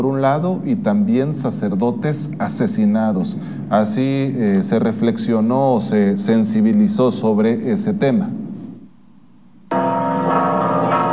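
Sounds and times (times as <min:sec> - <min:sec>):
speech: 0:00.0 - 0:08.4
church bells pealing: 0:09.7 - 0:11.1.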